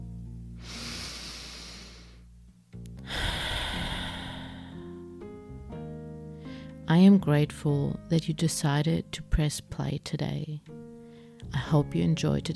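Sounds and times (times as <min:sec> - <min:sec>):
quiet sustained musical backdrop: 0:00.0 - 0:12.5
person taking a slow deep breath: 0:00.6 - 0:02.3, 0:03.0 - 0:05.0
speech: 0:06.9 - 0:10.9, 0:11.5 - 0:12.5.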